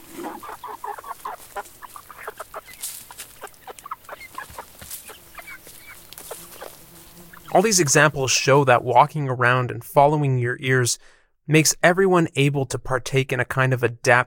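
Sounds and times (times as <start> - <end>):
local chickens clucking in a small-town soundscape: 0.0 - 8.2
speech: 7.6 - 14.2.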